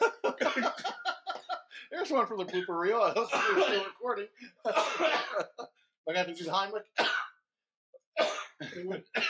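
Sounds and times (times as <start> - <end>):
person coughing after a drink went down the wrong way: 0.0 - 1.8, 2.4 - 4.0, 4.7 - 5.6, 7.0 - 7.3, 8.2 - 9.2
laughter: 0.0 - 6.6
speech: 2.1 - 7.0, 8.6 - 9.2.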